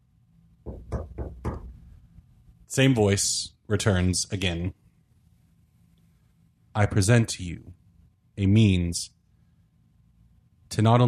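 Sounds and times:
knocking on a door: 0.6 - 1.8
speech: 2.7 - 4.8, 6.8 - 7.8, 8.4 - 9.2, 10.7 - 11.0.

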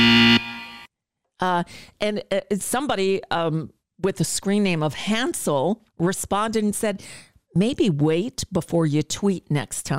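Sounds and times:
loud harsh game-show buzzer: 0.0 - 0.9
speech: 1.4 - 9.9.

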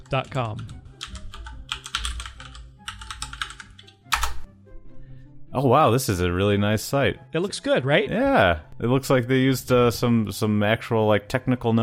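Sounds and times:
keyboard typing of a web address: 0.0 - 4.5
speech: 0.1 - 0.8, 5.5 - 11.8.

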